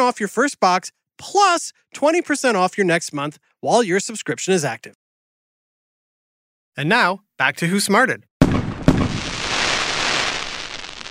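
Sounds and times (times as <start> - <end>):
speech: 0.1 - 5.0, 6.8 - 8.3
sharp firework bang: 8.4 - 11.0
hiss of crackling firework sparks: 8.8 - 11.0.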